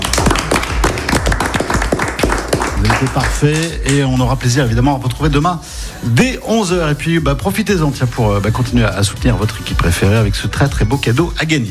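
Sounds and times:
audience applause at a live café show: 0:00.0 - 0:03.9
speech: 0:03.0 - 0:11.6.

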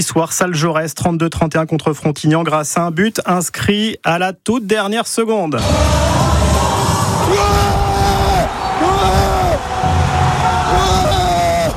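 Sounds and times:
speech: 0:00.0 - 0:06.2
victory group shouting and whooping in a crowded indoor space: 0:05.6 - 0:11.7.

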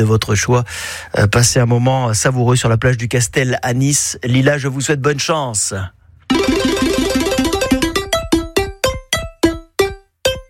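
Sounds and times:
speech: 0:00.0 - 0:07.1
radio quiz game spinning wheel ticking: 0:06.3 - 0:10.4.

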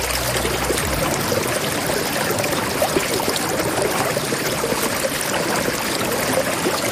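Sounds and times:
plenty of water flowing steadily: 0:00.0 - 0:06.9.

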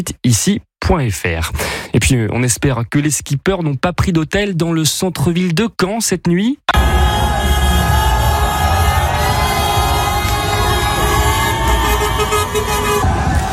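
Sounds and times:
speech: 0:00.0 - 0:07.9
football supporters chanting at street celebrations: 0:06.7 - 0:13.5
many car horns blaring at street celebrations: 0:06.7 - 0:13.5.

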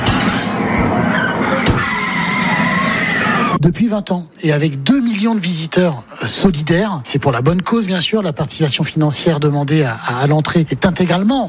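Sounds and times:
car tyres squealing and skidding: 0:00.0 - 0:03.6
speech: 0:03.6 - 0:11.4.

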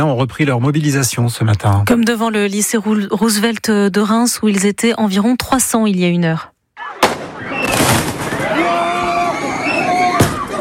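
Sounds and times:
speech: 0:00.0 - 0:07.1
agitated crowd of high school students shouting at a protest: 0:06.8 - 0:10.5
shrill whistle-like cries from a protest crowd: 0:06.8 - 0:10.5
firework or firecracker bangs at a protest: 0:07.0 - 0:08.6.

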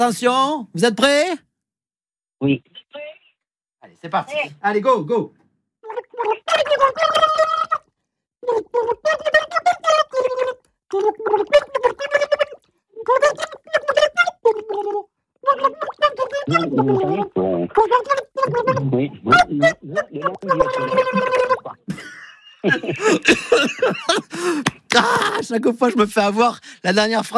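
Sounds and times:
speech: 0:00.0 - 0:01.4, 0:02.4 - 0:03.0, 0:03.8 - 0:05.4, 0:08.4 - 0:09.6, 0:10.9 - 0:12.2, 0:13.0 - 0:13.5, 0:14.5 - 0:27.3
person singing a melody into a basin of water: 0:05.8 - 0:18.6
laughter: 0:21.9 - 0:25.4.

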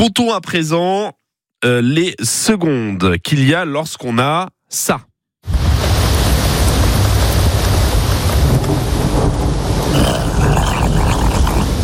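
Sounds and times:
speech: 0:00.0 - 0:05.1
deep rumbling thunder: 0:05.5 - 0:11.8
heavy rain in a thunderstorm: 0:05.5 - 0:11.8.

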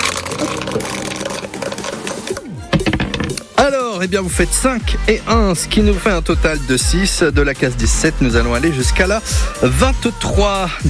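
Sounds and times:
dice rattling and tumbling: 0:00.0 - 0:03.4
speech: 0:00.4 - 0:01.0, 0:03.7 - 0:10.8.

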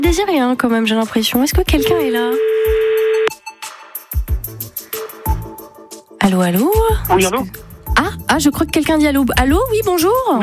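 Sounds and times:
speech: 0:00.1 - 0:02.9, 0:06.3 - 0:10.4
telephone ring tone on an outgoing call: 0:01.8 - 0:03.3.

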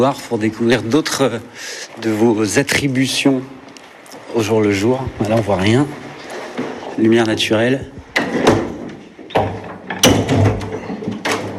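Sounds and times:
speech: 0:00.0 - 0:03.6, 0:04.3 - 0:06.0, 0:07.0 - 0:08.0
heavy metal window shutters in a corridor pushed open with clanks and scraping thuds: 0:08.0 - 0:11.5.

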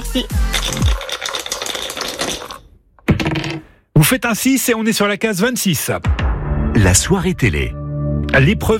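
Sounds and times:
speech: 0:00.1 - 0:00.9, 0:04.0 - 0:08.7
two board game dice rattling on a hard surface: 0:00.5 - 0:02.6.

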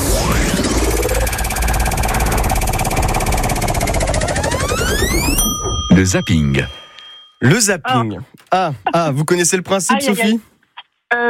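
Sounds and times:
sweeping synthetic tones: 0:00.0 - 0:05.9
big red prize wheel spinning and clicking at a game: 0:00.2 - 0:07.6
speech: 0:06.0 - 0:06.8, 0:07.4 - 0:10.5, 0:11.1 - 0:11.2.

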